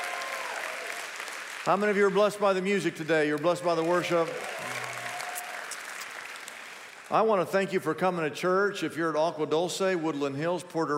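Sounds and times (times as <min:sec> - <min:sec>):
church audience clapping: 0:00.0 - 0:07.4
speech: 0:01.6 - 0:04.8, 0:07.1 - 0:10.9.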